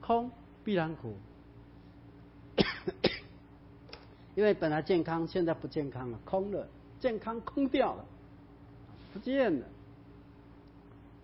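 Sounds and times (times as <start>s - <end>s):
speech: 0.1s - 1.3s, 4.4s - 8.2s, 9.2s - 9.8s
hacking coughs from a cold: 2.6s - 3.4s.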